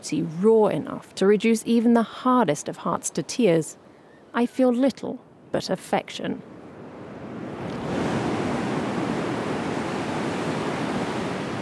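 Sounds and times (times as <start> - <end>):
speech: 0.0 - 6.5
surf washing onto a beach under the August sun: 7.2 - 11.5.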